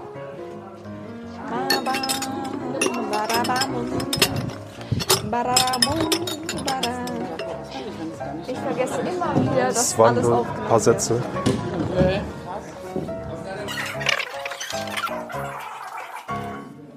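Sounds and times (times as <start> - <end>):
glass jars clinking and rattling against each other: 1.6 - 7.6, 13.7 - 16.5
speech: 5.3 - 7.0, 8.5 - 12.3.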